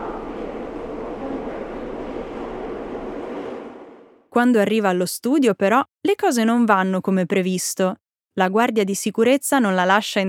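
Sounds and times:
metro train in motion with roar of wheels and carriage noise: 0.0 - 4.3
speech: 4.4 - 10.2.

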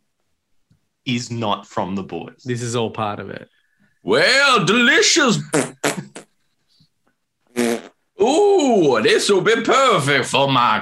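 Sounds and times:
speech: 1.0 - 6.0, 8.2 - 10.7
fart: 5.4 - 6.4, 7.5 - 8.0.

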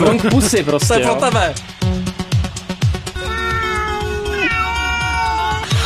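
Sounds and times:
speech: 0.1 - 2.0
cat meowing: 3.2 - 5.7.

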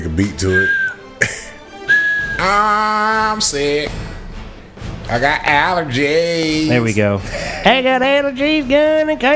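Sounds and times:
speech: 0.2 - 1.4, 2.4 - 4.1, 5.1 - 9.3
nose whistling while breathing out: 0.7 - 1.0, 1.9 - 2.4.

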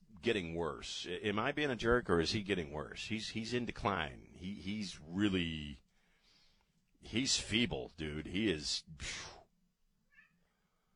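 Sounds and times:
speech: 0.2 - 5.8, 7.0 - 9.4
domestic cat meowing: 10.1 - 10.8.

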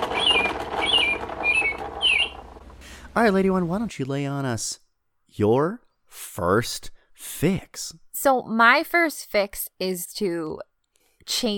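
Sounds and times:
pet bird chirping: 0.0 - 2.5
speech: 3.2 - 11.5.

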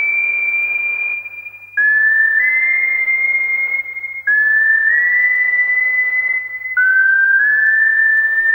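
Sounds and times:
whistled melody of an industrial metal song intro: 0.0 - 8.5.

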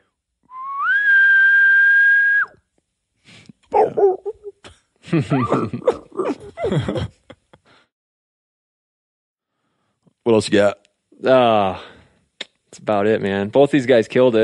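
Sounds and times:
person imitating a distant bull elk bugle with a high whistle: 0.5 - 2.6
several people laughing: 5.0 - 7.5
speech: 5.1 - 7.2, 10.3 - 12.0, 12.8 - 14.4.

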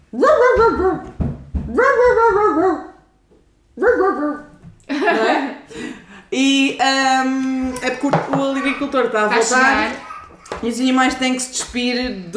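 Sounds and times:
speech: 0.1 - 2.9, 3.9 - 4.4, 5.0 - 12.3
person reading a farm-animal picture book imitating a dog barking: 0.1 - 3.0, 3.8 - 4.6, 7.7 - 10.7
laughter: 3.9 - 6.0.

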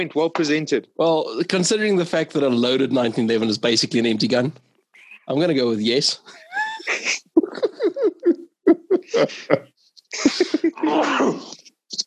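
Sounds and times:
speech: 0.0 - 4.7, 5.3 - 7.2, 9.2 - 11.6
laughter: 6.3 - 11.0
loud sneeze: 10.3 - 11.6.

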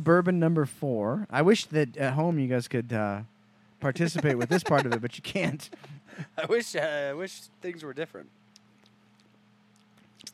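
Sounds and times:
speech: 0.0 - 8.4
low steady hum: 0.0 - 10.3
laughter: 4.0 - 6.8
people chewing food: 8.5 - 10.3.

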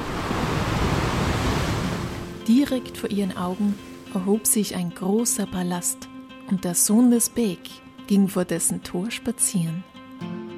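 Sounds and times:
sea waves surging: 0.0 - 4.1
speech: 2.5 - 9.9.

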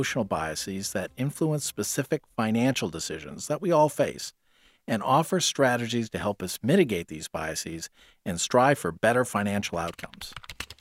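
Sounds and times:
speech: 0.0 - 10.6
typing a search-engine query on a computer keyboard: 9.8 - 10.8.

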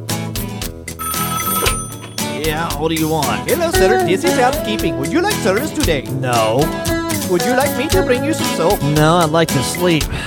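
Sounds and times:
telephone bell ringing: 0.9 - 3.7
speech: 2.4 - 10.2.

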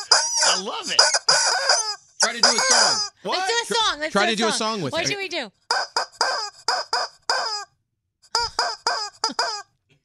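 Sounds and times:
glow-in-the-dark rubber chicken squeeze toy squawking a tune: 0.0 - 3.2, 5.7 - 9.8
speech: 0.6 - 5.6.

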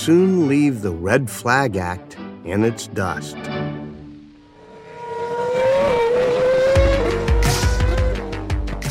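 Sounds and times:
speech: 0.0 - 3.7
Formula One race car engines whining on a racing circuit: 4.2 - 8.7.

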